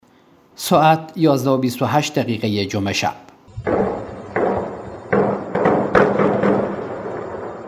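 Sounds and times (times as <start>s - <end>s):
speech: 0.6s - 3.8s
heavy deep explosions booming with rumbling tails: 3.5s - 7.6s.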